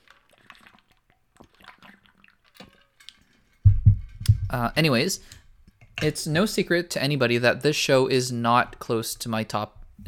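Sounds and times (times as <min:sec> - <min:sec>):
sipping water with wet slurps: 0:00.0 - 0:03.6
loud low thump: 0:03.7 - 0:04.7
speech: 0:04.5 - 0:05.4, 0:06.0 - 0:10.0.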